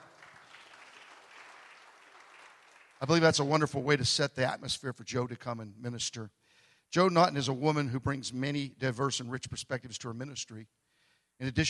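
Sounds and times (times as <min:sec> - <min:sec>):
audience applause: 0:00.0 - 0:03.4
speech: 0:03.0 - 0:11.6.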